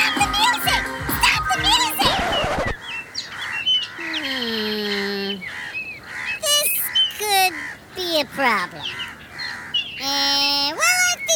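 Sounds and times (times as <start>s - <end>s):
birds chirping and squawking: 0.0s - 11.3s.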